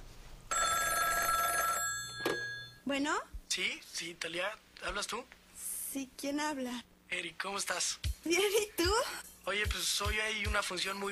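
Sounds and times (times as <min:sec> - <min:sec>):
telephone bell ringing at the opening of a song: 0:00.5 - 0:02.8
speech: 0:02.9 - 0:11.0.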